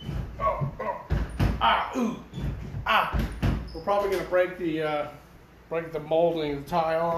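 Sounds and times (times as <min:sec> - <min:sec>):
sticking bathroom door thudding as it is shoved and jerked: 0:00.0 - 0:04.2
person straining: 0:00.8 - 0:03.2
speech: 0:02.0 - 0:02.2, 0:03.9 - 0:07.1.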